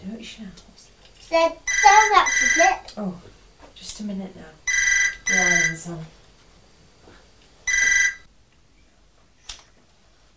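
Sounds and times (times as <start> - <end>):
speech: 0.2 - 4.6, 5.3 - 6.2
loud shrill telephone bell ringing: 1.7 - 2.8, 4.7 - 5.8, 7.7 - 8.3.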